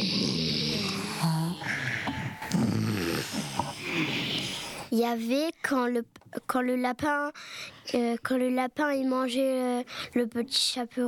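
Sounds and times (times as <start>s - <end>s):
voice imitating a bear snoring with rough rumbling snorts: 0.0s - 1.8s, 2.5s - 4.9s
speech: 5.0s - 11.0s.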